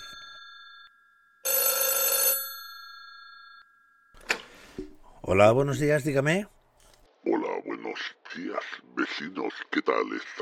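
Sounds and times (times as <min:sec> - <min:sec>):
old-style telephone bell ringing: 0:00.0 - 0:04.6
speech: 0:05.3 - 0:06.6, 0:09.2 - 0:10.4
laughter: 0:07.6 - 0:10.4.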